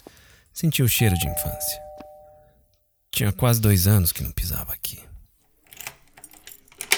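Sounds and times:
speech: 0.6 - 1.8, 3.2 - 5.1
key turning in a door lock: 5.6 - 6.9.

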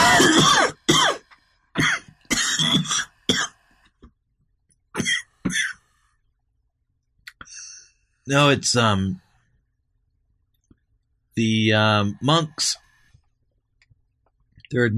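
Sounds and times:
person coughing harshly: 0.0 - 1.2, 1.8 - 3.6, 5.0 - 5.8
speech: 8.3 - 9.2, 11.4 - 12.8, 14.7 - 14.9.

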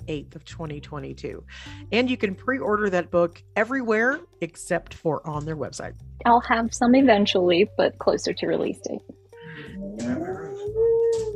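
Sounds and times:
speech: 0.1 - 9.2, 9.9 - 10.2
dog whining and howling: 9.7 - 11.3.

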